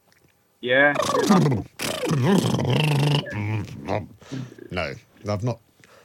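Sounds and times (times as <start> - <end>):
speech: 0.6 - 5.7
voiced lip trill imitating a horse: 0.9 - 4.6.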